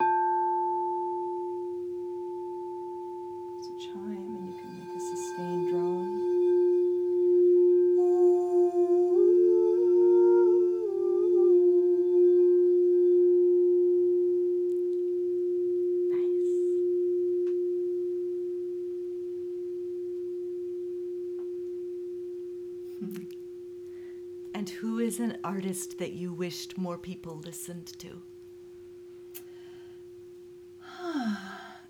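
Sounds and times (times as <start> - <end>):
crystal resonating instrument ringing with a pure direct tone: 0.0 - 27.6, 28.2 - 31.8
person's voice: 3.6 - 6.2, 24.6 - 28.2
speech: 25.6 - 28.3.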